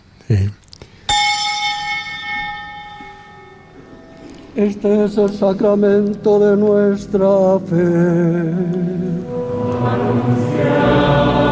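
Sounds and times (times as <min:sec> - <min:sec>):
speech: 0:00.3 - 0:00.6, 0:04.6 - 0:11.4
bell struck during Mass: 0:01.1 - 0:04.8.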